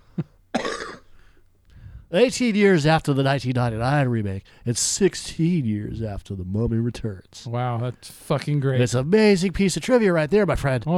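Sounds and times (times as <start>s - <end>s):
person coughing: 0.2s - 1.2s
speech: 2.1s - 10.9s.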